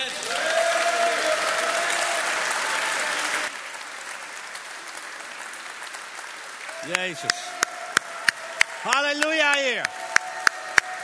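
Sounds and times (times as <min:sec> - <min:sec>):
large church audience applauding during a service: 0:00.0 - 0:11.0
speech: 0:06.9 - 0:07.6, 0:08.8 - 0:10.0.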